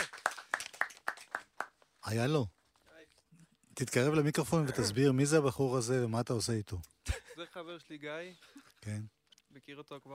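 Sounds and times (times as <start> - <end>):
single pair of hands clapping: 0.0 - 2.0
speech: 2.1 - 2.6, 3.8 - 6.9, 7.6 - 10.1.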